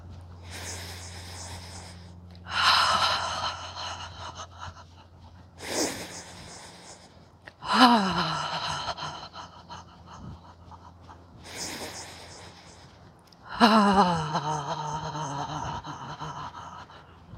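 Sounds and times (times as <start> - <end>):
person inhaling through the nose during yoga practice: 0.5 - 4.6, 5.6 - 7.2, 11.4 - 12.9
person exhaling with an open-mouthed ha sound during yoga practice: 0.5 - 4.8, 5.6 - 9.9, 11.4 - 16.8
voiced sigh falling in pitch: 0.5 - 5.0, 5.6 - 17.3.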